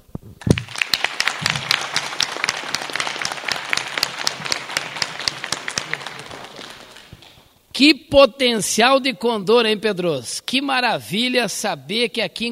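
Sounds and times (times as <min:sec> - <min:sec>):
audience applause for the town in Condor, Rio Grande do Sul, Brazil: 0:00.4 - 0:07.5
speech: 0:07.8 - 0:12.5.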